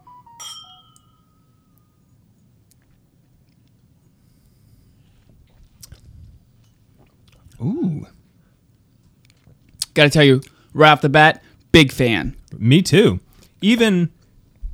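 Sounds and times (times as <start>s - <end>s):
glasses clinking in a toast: 0.3s - 1.9s
mouth sounds: 7.4s - 8.2s
speech: 7.6s - 8.2s, 10.0s - 14.2s.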